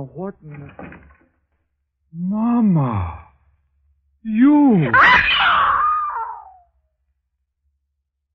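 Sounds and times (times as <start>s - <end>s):
speech: 0.0s - 1.1s, 2.1s - 3.3s, 4.2s - 5.6s
woman screaming in fright: 4.9s - 6.6s.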